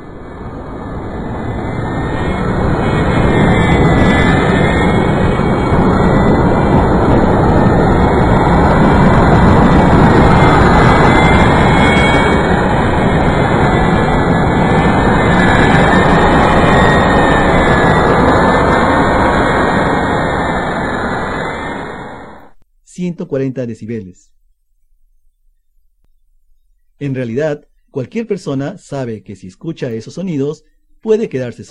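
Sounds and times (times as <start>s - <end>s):
jet airplane engine roaring during takeoff: 0.0s - 22.6s
speech: 23.0s - 24.4s, 27.0s - 31.6s.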